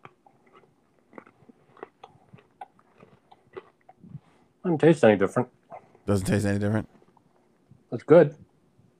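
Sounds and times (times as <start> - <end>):
chewing a crunchy cookie: 0.0 - 4.6
speech: 4.6 - 7.0, 7.9 - 8.4.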